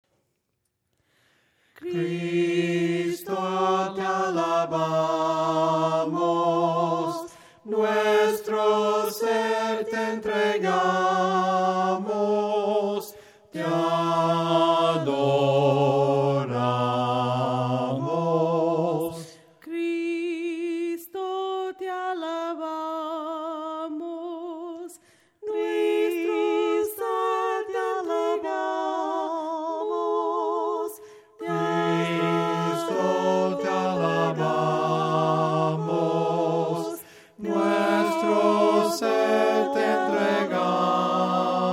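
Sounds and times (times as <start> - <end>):
voices singing hymns a cappella: 1.6 - 41.7.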